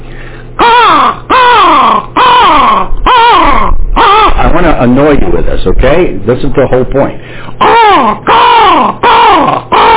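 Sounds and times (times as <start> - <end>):
person imitating crow caws: 0.6 - 4.7, 7.6 - 9.9
speech: 4.6 - 9.0.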